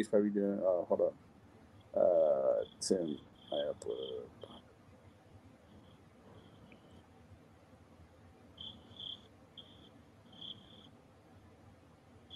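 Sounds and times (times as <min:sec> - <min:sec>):
speech: 0:00.0 - 0:01.3, 0:02.0 - 0:04.6
low hum: 0:00.0 - 0:12.3
crickets chirping at night: 0:01.7 - 0:07.1, 0:08.5 - 0:11.0, 0:12.2 - 0:12.3.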